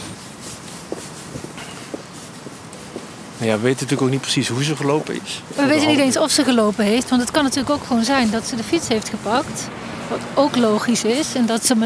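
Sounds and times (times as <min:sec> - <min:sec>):
footsteps of people walking outdoors crunching: 0:00.0 - 0:09.4
constant hiss of outdoor ambience: 0:00.0 - 0:11.8
speech: 0:03.4 - 0:11.8.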